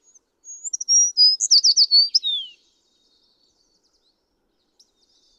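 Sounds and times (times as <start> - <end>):
American tree sparrow singing: 0.5 - 2.6.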